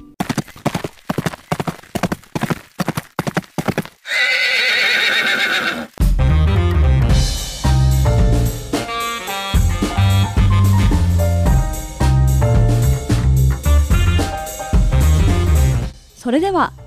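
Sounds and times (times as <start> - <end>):
horse hooves clip-clopping: 0.0 - 6.0
loud drawn-out horse neigh: 4.0 - 6.0
upbeat music: 6.0 - 16.8
speech: 16.3 - 16.8.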